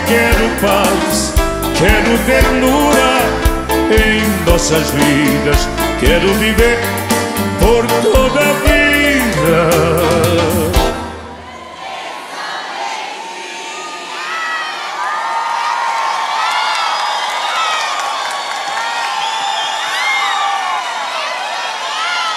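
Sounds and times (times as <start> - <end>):
speech: 0.1 - 7.0, 7.6 - 10.7
audience high shouts and whoops: 11.3 - 22.3
large audience at a live brega music performance in Recife applauding: 14.9 - 22.3.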